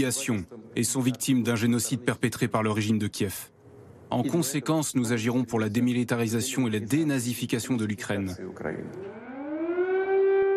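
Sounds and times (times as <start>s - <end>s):
speech: 0.0s - 9.2s
air raid siren wailing: 9.0s - 10.5s.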